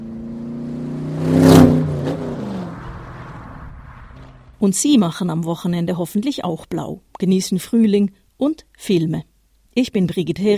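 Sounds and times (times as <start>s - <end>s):
car speeding past on a motorway: 0.0s - 4.6s
speech: 4.6s - 10.5s.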